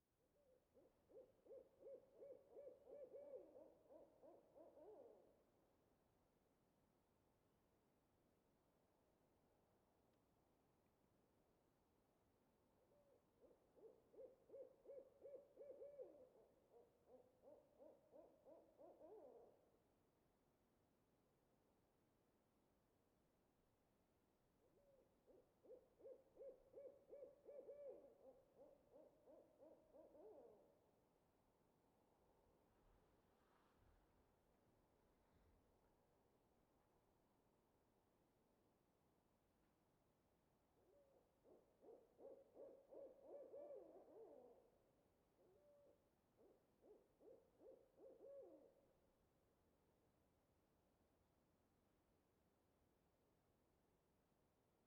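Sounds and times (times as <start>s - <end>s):
owl hooting: 0.8s - 5.3s, 12.9s - 19.6s, 24.6s - 30.7s, 40.8s - 44.8s, 45.4s - 48.8s.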